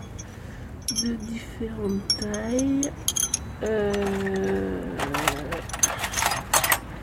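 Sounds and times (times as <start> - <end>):
scissors being picked up and handled: 0.9 - 6.8
speech: 1.1 - 5.2.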